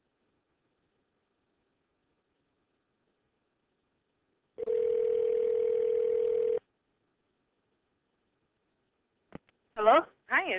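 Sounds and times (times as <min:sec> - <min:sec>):
ringback tone on an outgoing phone call: 0:04.6 - 0:06.6
speech: 0:09.8 - 0:10.5.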